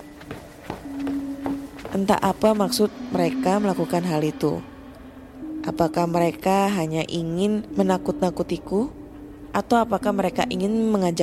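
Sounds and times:
footsteps walking: 0.0s - 2.7s
speech: 2.0s - 4.7s, 5.6s - 11.2s.

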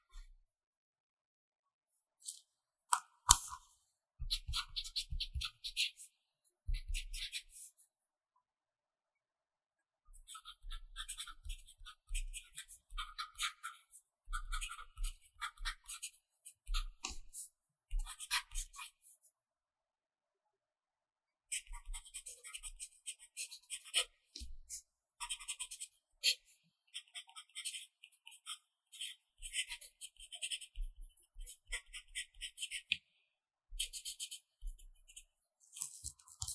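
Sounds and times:
pencil writing on paper: 3.3s - 6.1s, 6.7s - 7.8s, 10.3s - 19.1s, 21.5s - 32.9s, 33.8s - 36.5s.

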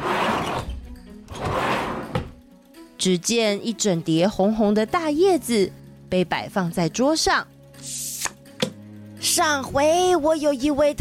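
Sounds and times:
cabinet drawer rolling and scraping open: 0.0s - 2.4s
cabinet drawer thunk: 1.3s - 2.4s
speech: 3.0s - 8.0s, 9.3s - 10.9s.

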